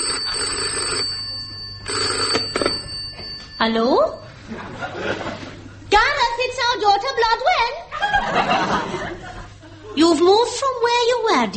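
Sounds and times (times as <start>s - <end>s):
telephone bell ringing: 0.0s - 4.4s
speech: 3.6s - 9.2s, 10.0s - 11.5s
laughter: 4.4s - 5.9s, 7.9s - 10.0s.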